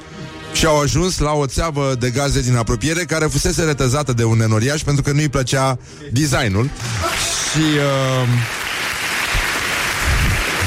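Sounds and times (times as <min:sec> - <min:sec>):
speech: 0:00.6 - 0:08.6
crowd clapping: 0:06.5 - 0:10.6.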